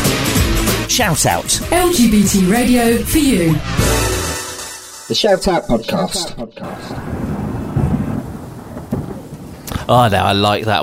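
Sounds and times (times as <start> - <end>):
thunder rumbling: 0.9 - 4.4, 6.6 - 10.8
speech: 1.0 - 4.1, 5.1 - 7.1, 9.9 - 10.8
faint rain-like hiss: 6.9 - 10.8.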